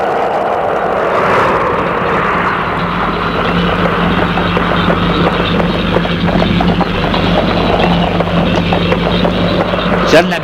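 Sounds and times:
low rumbling drone: 0.0s - 10.4s
horse hooves clip-clopping at a walk through a gate: 2.3s - 10.4s
speech: 10.1s - 10.4s.

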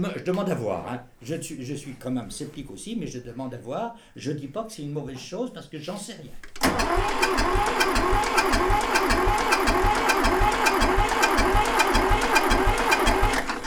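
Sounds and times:
speech: 0.0s - 11.2s
car engine cranked by its starter without catching: 6.4s - 13.6s.

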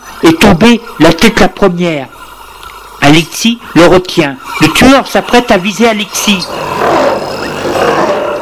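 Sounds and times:
speech: 0.3s - 2.2s, 3.0s - 6.8s
tiger roaring: 6.3s - 8.3s.

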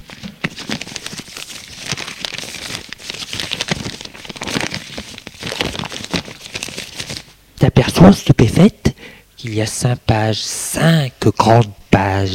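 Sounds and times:
paper envelope being opened: 0.0s - 7.3s
speech: 8.0s - 12.3s.

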